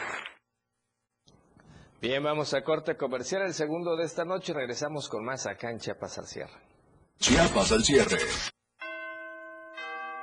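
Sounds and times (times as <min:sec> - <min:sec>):
speech: 0:02.0 - 0:08.5
Christmas bells chiming: 0:08.8 - 0:10.2.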